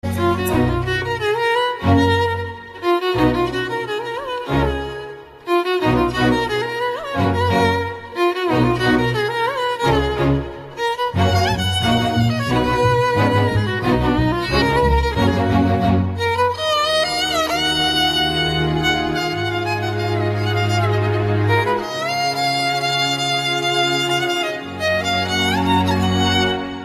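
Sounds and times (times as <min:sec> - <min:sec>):
violin music: 0:00.0 - 0:26.8.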